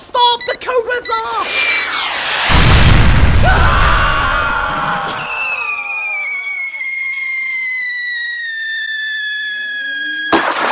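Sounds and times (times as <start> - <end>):
thin whining tone: 0.5 - 2.7, 5.1 - 10.4
missiles fired and exploding: 1.6 - 5.2.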